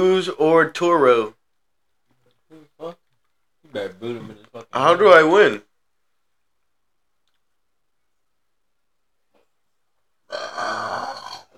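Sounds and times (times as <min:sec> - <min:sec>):
speech: 0:00.0 - 0:01.4, 0:03.7 - 0:05.7
person belching loudly: 0:10.3 - 0:11.5.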